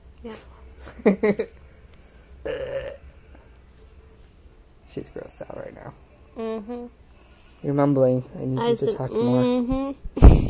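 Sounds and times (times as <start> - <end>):
faint steady hum: 0.0 - 10.4
speech: 0.2 - 1.6, 2.4 - 3.0, 4.9 - 7.0, 7.6 - 10.4
short burp with gulping pulses: 2.4 - 3.0
longer low belch-like rumble: 2.5 - 3.0.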